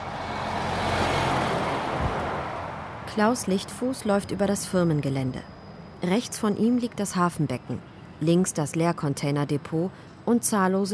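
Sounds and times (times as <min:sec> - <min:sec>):
large semi-trailer trucks driving past on a road at a freight hub in a port: 0:00.0 - 0:04.4
speech: 0:03.2 - 0:10.9.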